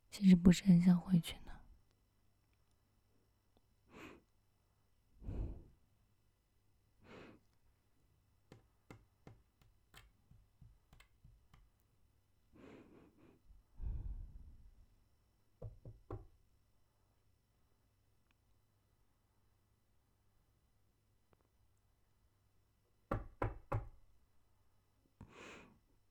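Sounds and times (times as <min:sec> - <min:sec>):
speech: 0:00.1 - 0:01.4
soft breathy sigh: 0:05.2 - 0:05.8, 0:12.6 - 0:14.7
sharp knocks on a door: 0:08.5 - 0:09.7, 0:10.3 - 0:11.6, 0:15.6 - 0:16.4, 0:23.1 - 0:24.0.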